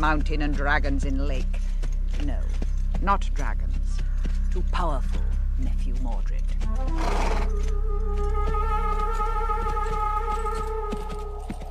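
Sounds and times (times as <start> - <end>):
speech: 0.0 - 9.3
horse hooves clip-clopping in a trotting rhythm: 0.0 - 11.6
knight's horse neighing: 6.9 - 7.5.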